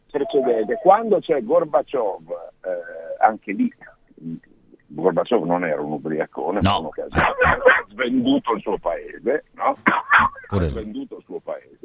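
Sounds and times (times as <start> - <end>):
speech: 0.1 - 11.8
dog barking in a car with high yipping barks: 7.2 - 7.9.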